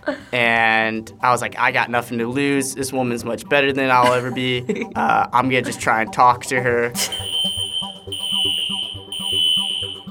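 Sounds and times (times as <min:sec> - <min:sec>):
speech: 0:00.1 - 0:07.4
fire alarm blaring with a piercing high-pitched tone: 0:07.1 - 0:10.0
rhythmic low thumping beat: 0:07.2 - 0:10.0.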